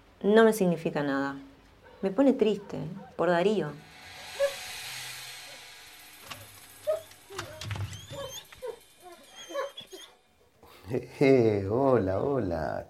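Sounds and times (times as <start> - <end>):
speech: 0.2 - 3.9, 10.9 - 12.8
dogs whimpering and yipping in greeting: 6.8 - 10.2.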